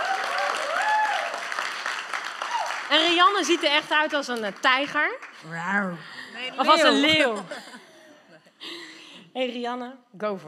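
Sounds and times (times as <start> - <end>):
hall audience applause welcoming a participant: 0.0 - 5.4
speech: 2.9 - 7.8, 9.4 - 10.4.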